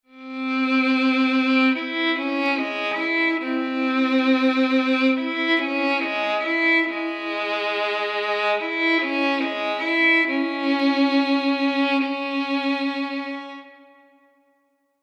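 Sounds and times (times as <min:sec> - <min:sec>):
violin in a hall: 0:00.0 - 0:14.4.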